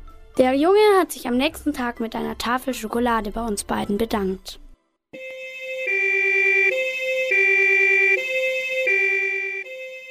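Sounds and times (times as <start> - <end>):
speech: 0.4 - 4.6
two-tone ambulance siren: 5.2 - 10.0.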